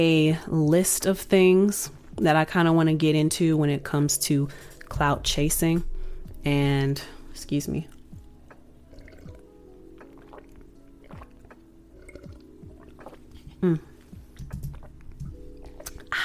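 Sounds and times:
speech: 0:00.0 - 0:08.0, 0:13.6 - 0:13.9
person sipping and swallowing water: 0:08.9 - 0:16.2
wet mouth sounds: 0:08.9 - 0:16.2.

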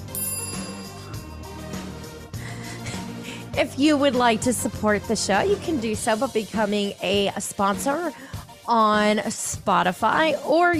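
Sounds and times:
ringtone-like electronic notification bell sound effect: 0:00.0 - 0:02.2
speech: 0:03.6 - 0:10.7.

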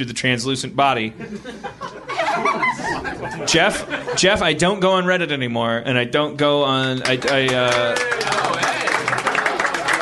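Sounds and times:
speech: 0:00.0 - 0:08.3
laughter: 0:01.1 - 0:04.4, 0:08.1 - 0:09.9
crowd applauding: 0:07.0 - 0:09.9.

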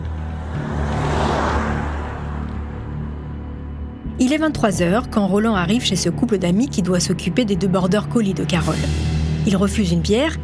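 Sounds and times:
car engine revving as it drives off: 0:00.0 - 0:03.2
speech: 0:04.2 - 0:10.4.

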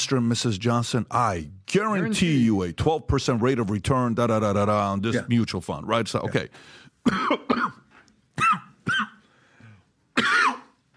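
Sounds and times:
speech: 0:00.0 - 0:07.8
faint breathing: 0:06.5 - 0:07.0, 0:09.2 - 0:10.0
person coughing: 0:07.0 - 0:09.2, 0:10.2 - 0:10.8.

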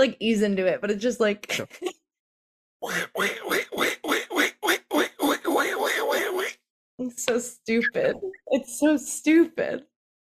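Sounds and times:
speech: 0:00.0 - 0:02.0, 0:02.8 - 0:04.0, 0:07.0 - 0:09.9
voice imitating a cartoon duck: 0:02.8 - 0:06.6.

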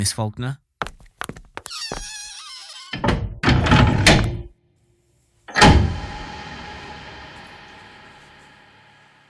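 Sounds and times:
speech: 0:00.0 - 0:00.6
door creaking open with a squeaky hinge: 0:01.6 - 0:04.5, 0:05.5 - 0:07.6
short door squeak: 0:01.7 - 0:04.3
door rattling: 0:01.8 - 0:04.5
door slamming shut: 0:02.5 - 0:04.5, 0:05.5 - 0:08.4.

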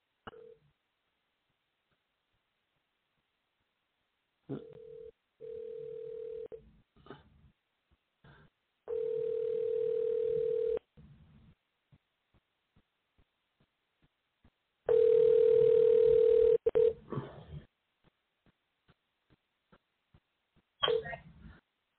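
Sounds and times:
phone dialing clicks and tones: 0:08.9 - 0:10.8, 0:14.9 - 0:17.0.

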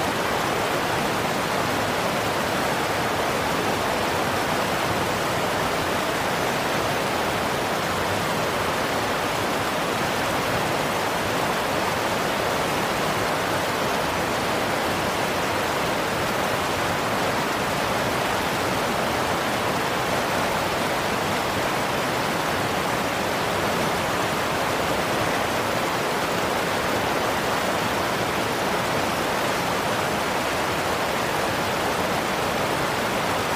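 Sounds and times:
river rushing: 0:00.0 - 0:33.5.

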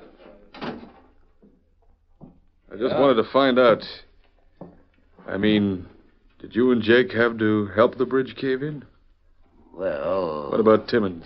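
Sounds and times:
door shutting with a thud: 0:00.5 - 0:01.1
speech: 0:02.8 - 0:04.1, 0:05.3 - 0:08.9, 0:09.8 - 0:11.2.

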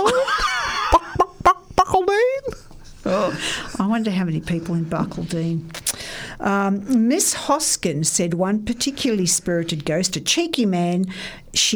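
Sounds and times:
person imitating a clucking chicken: 0:00.0 - 0:03.9
laughter: 0:00.0 - 0:04.7
speech: 0:04.0 - 0:05.8, 0:06.4 - 0:11.7.

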